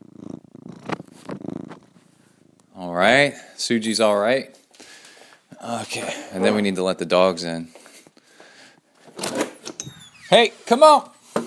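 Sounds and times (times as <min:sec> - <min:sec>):
cat purring: 0:00.0 - 0:03.6
speech: 0:02.8 - 0:04.6, 0:05.6 - 0:07.8, 0:10.3 - 0:11.1.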